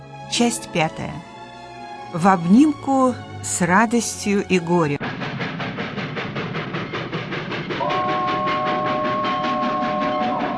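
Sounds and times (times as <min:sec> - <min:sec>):
speech: 0:00.3 - 0:01.3, 0:02.1 - 0:05.0
steam locomotive chugging over the rails: 0:02.1 - 0:10.5
long sustained steam locomotive whistle: 0:07.8 - 0:10.5.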